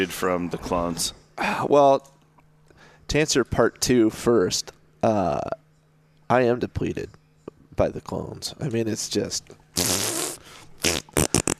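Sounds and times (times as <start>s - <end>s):
speech: 0.0s - 2.2s, 3.1s - 5.6s, 6.3s - 7.2s, 7.8s - 10.0s
fart noise blown by a voice: 9.8s - 11.5s.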